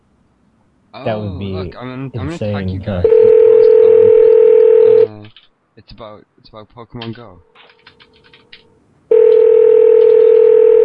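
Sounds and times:
speech: 0:00.9 - 0:03.4, 0:05.8 - 0:07.8
social media video call ringtone: 0:03.0 - 0:05.1, 0:09.1 - 0:10.8.

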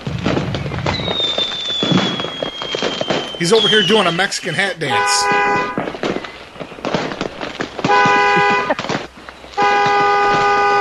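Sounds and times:
fireworks being let off outside: 0:00.0 - 0:10.7
speech: 0:03.4 - 0:05.8
car alarm honking: 0:04.8 - 0:06.0, 0:07.9 - 0:08.8, 0:09.6 - 0:10.7
laughter: 0:08.0 - 0:09.2.

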